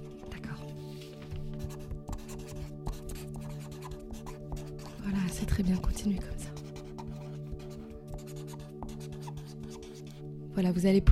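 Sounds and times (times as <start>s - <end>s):
pen writing on paper: 1.6s - 10.2s
speech: 5.3s - 6.4s, 10.6s - 11.1s.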